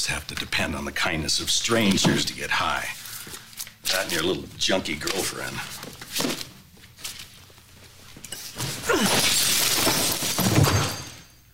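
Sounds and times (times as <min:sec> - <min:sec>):
speech: 0:00.0 - 0:06.4
quieter shuffling sounds: 0:02.8 - 0:08.9
glass flask thrown and shattering on the ground: 0:08.2 - 0:11.5.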